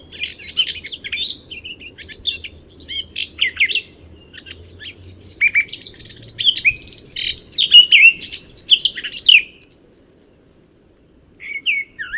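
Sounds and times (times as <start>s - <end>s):
Eurasian blackcap (Sylvia atricapilla) warbling song: 0.0s - 9.6s.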